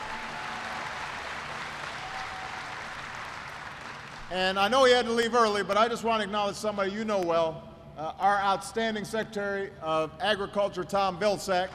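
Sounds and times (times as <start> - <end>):
audience applause: 0.0 - 4.3
speech: 4.3 - 11.7.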